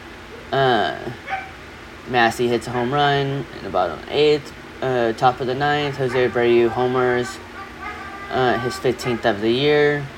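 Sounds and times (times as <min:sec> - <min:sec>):
speech: 0:00.5 - 0:01.2, 0:02.1 - 0:07.5, 0:08.3 - 0:10.1
puppy yelping whine in kennel: 0:01.2 - 0:01.6, 0:05.9 - 0:08.4
puppy whimpering in kennel: 0:05.8 - 0:08.7.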